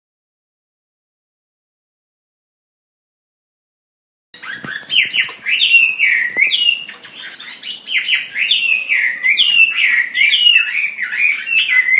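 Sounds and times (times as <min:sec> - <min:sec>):
Chinese hwamei singing: 0:04.4 - 0:11.9.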